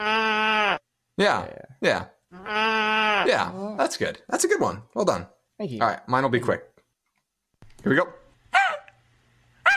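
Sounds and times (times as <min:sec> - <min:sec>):
person imitating sheep bleating: 0:00.0 - 0:00.8, 0:02.3 - 0:03.8
speech: 0:01.2 - 0:06.7, 0:07.8 - 0:08.2.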